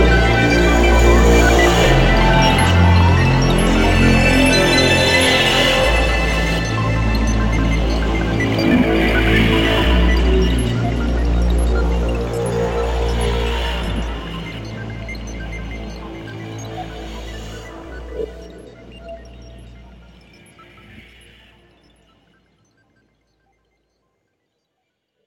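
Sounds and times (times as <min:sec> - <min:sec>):
deep sustained bass notes made from scratched ice: 0:00.0 - 0:15.3
instrumental piece made from water, ice and gas sounds: 0:00.0 - 0:21.2.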